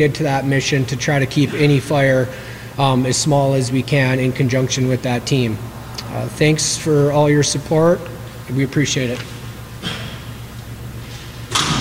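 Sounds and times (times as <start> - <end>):
speech: 0.0 - 10.0
steady low hum in a room: 0.0 - 11.7
door pushed shut with a whooshing thud: 11.5 - 11.7.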